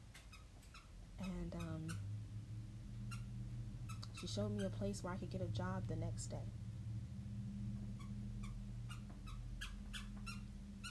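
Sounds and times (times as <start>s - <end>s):
puppy squeaking a little squeaky toy: 0.3s - 2.1s, 3.1s - 3.3s, 8.0s - 10.8s
steady low hum: 1.0s - 10.8s
speech: 1.2s - 2.1s, 4.2s - 6.6s.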